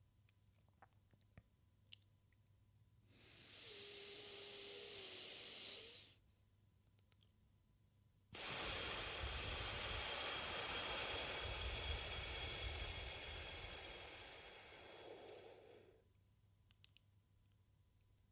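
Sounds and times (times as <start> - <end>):
slow deep breathing in and out: 3.2 - 6.1, 8.4 - 16.0.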